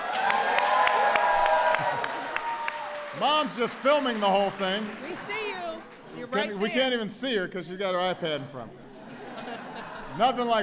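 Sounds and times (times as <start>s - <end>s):
faint cheering: 0.0s - 3.5s
audience applause: 0.0s - 6.5s
speech: 3.2s - 5.3s, 6.2s - 8.8s, 10.2s - 10.6s
laughter: 8.2s - 10.6s.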